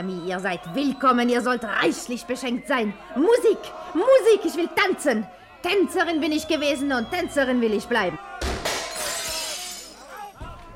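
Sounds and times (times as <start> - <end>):
speech: 0.0 - 8.2
windows shattering throughout a house: 8.4 - 10.0
bright tinkling fragments of breaking glass: 8.8 - 10.1.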